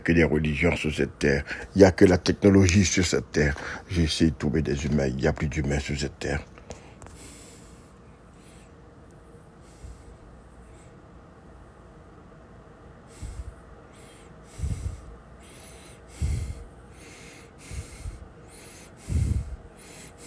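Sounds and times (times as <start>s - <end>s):
speech: 0.0s - 6.5s
low constant hiss: 0.0s - 20.2s
person breathing: 1.4s - 1.8s, 3.6s - 3.9s, 6.6s - 8.9s, 9.5s - 11.0s, 13.0s - 20.2s.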